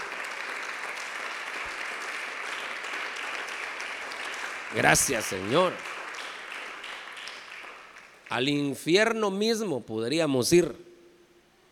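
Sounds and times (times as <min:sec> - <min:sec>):
audience applause: 0:00.0 - 0:08.3
speech: 0:04.7 - 0:05.9, 0:08.3 - 0:10.9.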